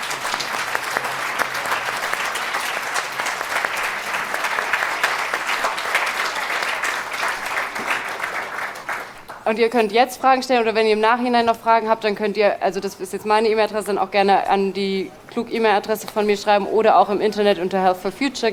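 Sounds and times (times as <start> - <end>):
audience applause at the end of a talk: 0.0 - 9.4
speech: 9.5 - 18.5.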